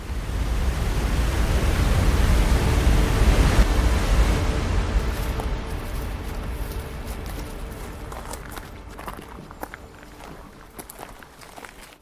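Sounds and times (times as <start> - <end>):
waterfall roaring: 0.0 - 11.9
crunching footsteps on gravel from someone hiking the waterfall trail: 5.0 - 12.0.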